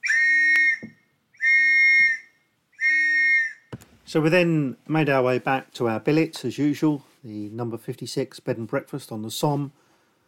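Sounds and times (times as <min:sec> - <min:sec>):
officer's whistle blasts: 0:00.0 - 0:03.8
speech: 0:04.1 - 0:09.8.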